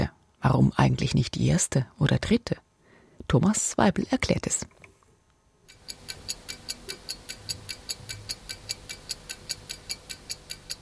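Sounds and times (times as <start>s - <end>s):
speech: 0.4s - 2.6s, 3.2s - 4.8s
clock ticking: 5.7s - 10.7s.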